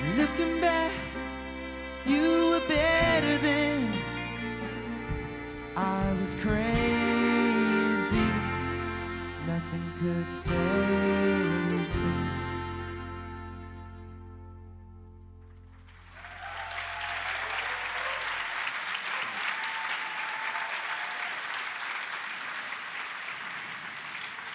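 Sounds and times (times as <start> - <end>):
held musical chord at a live concert: 0.0 - 15.6
speech: 6.2 - 6.9, 10.0 - 11.0
audience applause at a live concert: 15.6 - 24.5
faint audience cheers: 15.9 - 24.5.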